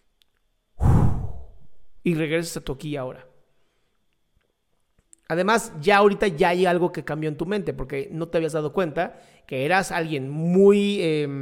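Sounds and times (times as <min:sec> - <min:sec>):
deep breath sighing out: 0:00.8 - 0:01.7, 0:09.2 - 0:09.5
speech: 0:02.0 - 0:03.3, 0:05.3 - 0:11.4.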